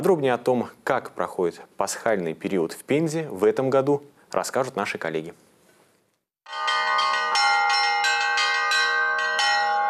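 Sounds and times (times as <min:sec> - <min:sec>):
speech: 0:00.0 - 0:05.5
festive church bells pealing from a cathedral belfry: 0:06.5 - 0:09.8.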